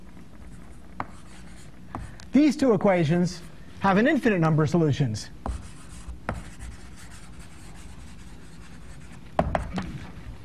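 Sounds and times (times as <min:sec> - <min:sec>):
chalk-like scratching of writing an equation on a board: 0:00.4 - 0:02.1, 0:05.4 - 0:10.1
speech: 0:02.3 - 0:05.4.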